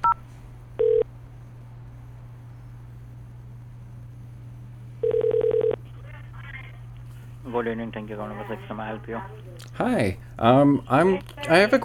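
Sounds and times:
steady low hum: 0.0s - 11.8s
telephone keypad dialing tones: 5.0s - 5.8s
speech: 7.6s - 11.8s.

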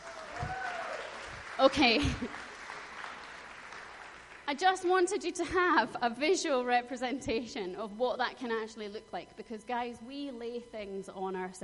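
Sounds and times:
audience applauding: 0.0s - 4.5s
speech: 1.6s - 2.5s, 4.5s - 11.6s.

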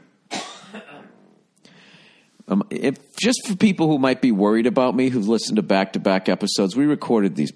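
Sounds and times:
person coughing: 0.3s - 1.3s
speech: 0.7s - 1.2s, 2.5s - 7.5s.

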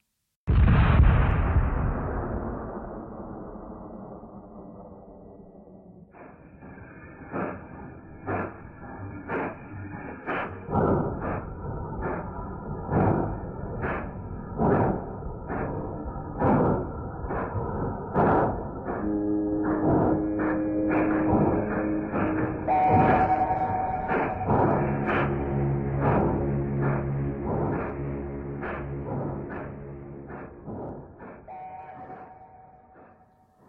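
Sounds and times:
heavy cannon blasts: 0.5s - 4.0s
factory sirens of Baku droning: 6.2s - 33.3s
factory horn tones: 19.0s - 30.3s.

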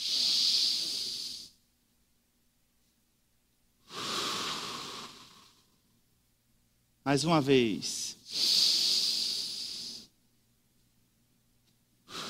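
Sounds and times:
deep breathing during a guided breathing exercise: 0.0s - 1.6s, 3.8s - 5.8s, 8.2s - 10.1s, 12.0s - 12.2s
speech: 7.1s - 8.6s.

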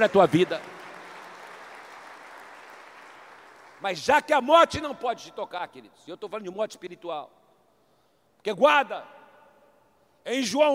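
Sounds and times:
speech: 0.0s - 0.8s, 3.8s - 7.4s, 8.4s - 9.2s, 10.2s - 10.7s
audience applauding: 0.0s - 3.8s.

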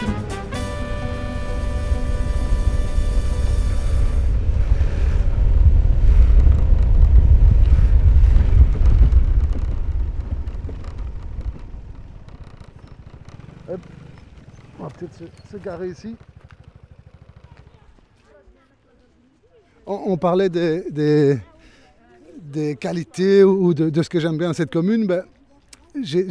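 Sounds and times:
scooter engine humming steadily: 0.0s - 18.9s
heavy wind buffeting the microphone: 1.8s - 13.4s
speech: 15.2s - 16.3s, 20.0s - 21.5s, 22.5s - 25.3s, 26.0s - 26.2s.

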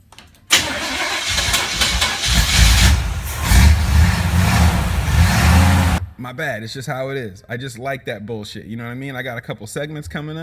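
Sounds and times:
car engine cranking, starting and idling: 0.5s - 6.2s
speech: 6.3s - 10.4s.

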